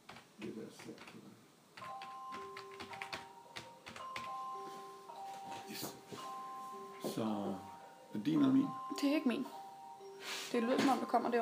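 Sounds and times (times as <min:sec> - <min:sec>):
typing an email on a keyboard: 0:00.0 - 0:01.2, 0:01.8 - 0:04.5
speech: 0:00.6 - 0:02.0, 0:07.2 - 0:09.6, 0:10.5 - 0:11.4.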